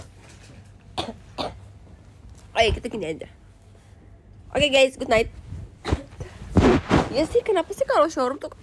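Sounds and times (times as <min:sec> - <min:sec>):
low hum: 0:00.0 - 0:08.6
person coughing: 0:01.0 - 0:01.6
speech: 0:02.6 - 0:03.4, 0:04.6 - 0:05.4, 0:07.1 - 0:08.6.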